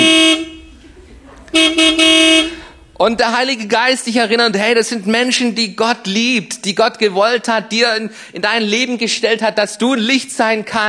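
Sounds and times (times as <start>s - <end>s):
car horn honking: 0.0s - 3.1s
speech: 3.0s - 10.8s.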